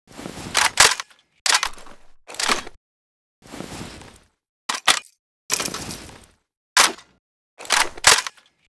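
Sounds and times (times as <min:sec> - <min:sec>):
PKM machine gun reloading: 0:00.6 - 0:02.8, 0:04.7 - 0:05.9, 0:07.6 - 0:08.4.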